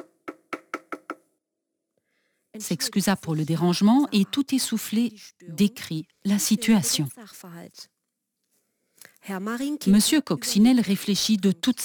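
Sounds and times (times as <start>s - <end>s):
sharp knocks on a door: 0.0s - 1.2s
speech: 2.6s - 8.0s, 9.2s - 11.8s.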